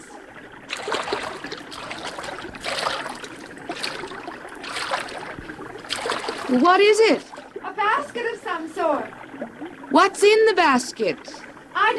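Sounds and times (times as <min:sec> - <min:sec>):
someone wading through shallow river water among bulrushes: 0:00.0 - 0:11.5
speech: 0:06.5 - 0:07.3, 0:10.0 - 0:11.9.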